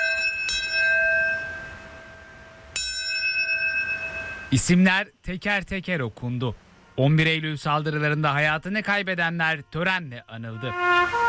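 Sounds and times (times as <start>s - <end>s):
bell strikes at a memorial ceremony: 0.0s - 4.6s
speech: 4.5s - 11.2s.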